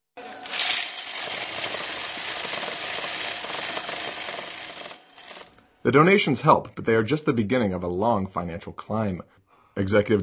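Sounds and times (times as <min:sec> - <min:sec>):
coins being counted: 0:00.4 - 0:05.6
speech: 0:05.8 - 0:10.2.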